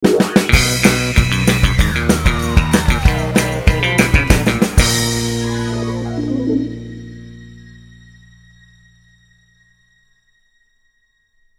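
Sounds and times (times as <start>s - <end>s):
energetic dance music: 0.2s - 6.8s.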